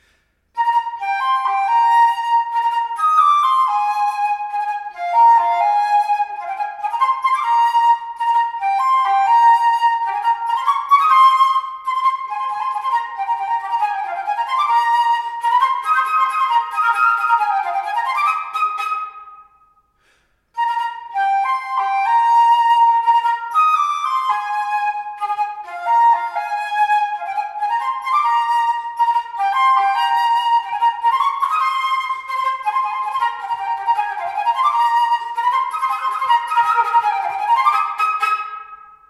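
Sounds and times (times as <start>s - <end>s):
flute playing a polka: 0.6s - 19.6s, 20.6s - 39.0s.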